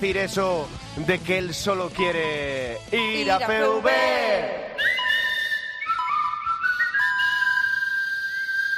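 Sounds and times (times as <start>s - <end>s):
speech: 0.0s - 4.7s
person whistling a tune: 4.8s - 8.7s.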